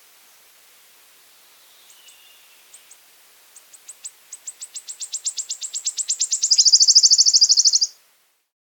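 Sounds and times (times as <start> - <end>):
wood warbler song with ticks ending in a sizzling trill: 1.2 - 8.0.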